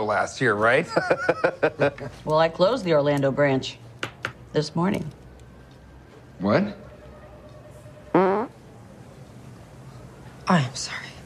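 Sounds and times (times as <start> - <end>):
speech: 0.0 - 3.8, 4.5 - 5.2, 6.4 - 6.8
laughter: 0.9 - 2.1
fart: 8.2 - 8.5.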